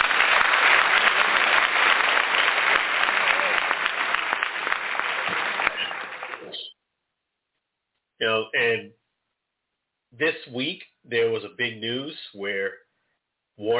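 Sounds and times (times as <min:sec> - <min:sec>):
crowd applauding: 0:00.0 - 0:06.7
speech: 0:10.5 - 0:12.8.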